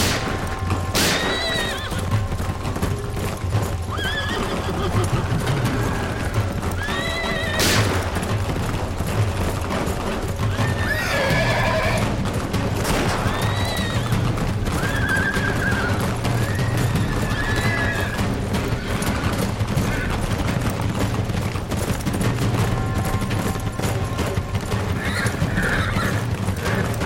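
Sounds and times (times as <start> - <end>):
sharp gunshots: 0.0 - 2.2, 7.6 - 8.7, 12.6 - 13.7
galloping horse hooves: 0.0 - 27.0
horse whinnying: 0.9 - 2.3, 3.8 - 8.4, 10.4 - 12.2, 12.9 - 20.7, 22.6 - 27.0.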